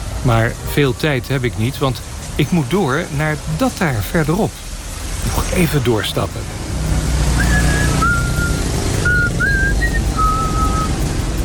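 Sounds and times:
steady low rumble of outdoor noise: 0.0 - 11.4
speech: 0.2 - 4.6, 5.3 - 6.6
short clear whistle tones gliding slightly upward: 7.4 - 11.0.

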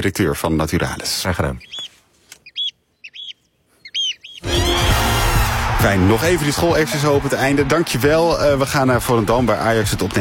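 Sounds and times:
speech: 0.0 - 1.8, 5.8 - 10.1
bright bird chirps: 1.6 - 4.8.

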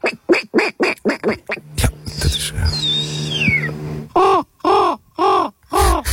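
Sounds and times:
loud croaking calls imitated by voice: 0.1 - 5.6
contestants at a bird whistling championship imitating bird calls: 1.2 - 6.0
high gliding whistles: 2.3 - 3.8.

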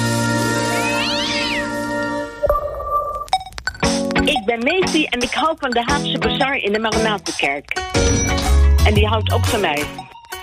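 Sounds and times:
steady tones: 0.5 - 10.4
cat meowing: 0.7 - 1.8
speech: 4.6 - 10.0.

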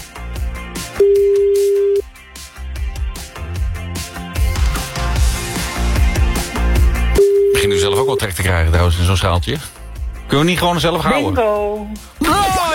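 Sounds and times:
busy music: 0.0 - 12.7
telephone ringing tone during outgoing call: 1.0 - 2.0, 7.2 - 8.2
speech: 8.2 - 12.3.

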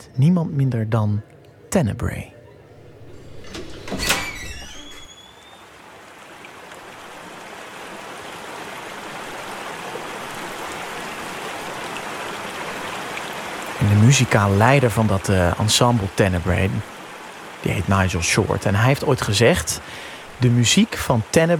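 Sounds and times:
speech: 0.0 - 2.4, 14.0 - 16.9, 17.6 - 21.5
outdoor noise wash: 0.0 - 21.5
sliding door scraping open: 2.7 - 5.7.

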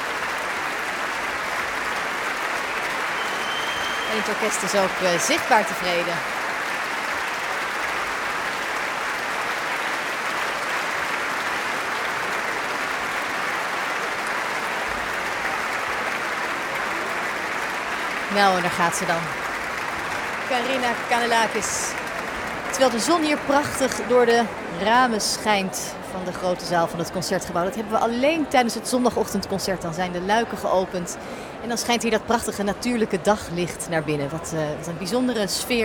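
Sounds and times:
large concert audience applauding in a hall: 0.0 - 32.6
sharp whistles from a concert audience: 3.1 - 4.3
speech: 4.1 - 6.4, 18.3 - 19.5, 20.5 - 22.0, 22.8 - 35.8.

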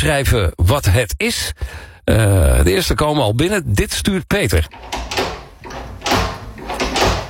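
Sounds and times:
speech: 0.0 - 5.4
toilet door handle clicking and rattling: 4.7 - 7.2.

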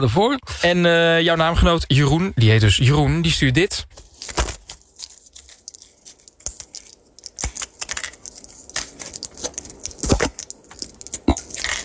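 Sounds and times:
speech: 0.0 - 4.5
pills clicking and rattling as medication is sorted: 4.2 - 11.8.

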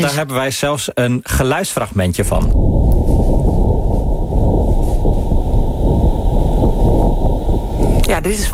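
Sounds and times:
speech: 0.0 - 3.4, 8.2 - 8.5
wind on Mars during dust storms: 2.2 - 8.5.

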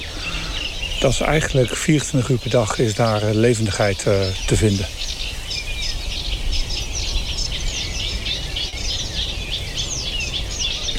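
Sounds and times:
Eurasian reed warbler singing in a large reed marsh in the morning: 0.0 - 10.9
speech: 1.0 - 5.0.

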